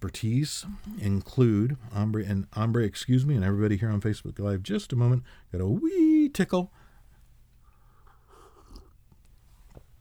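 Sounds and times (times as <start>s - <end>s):
speech: 0.0s - 6.8s
person sipping a drink: 0.6s - 1.2s
small gulp: 0.6s - 1.2s
soft slurp: 0.6s - 1.3s.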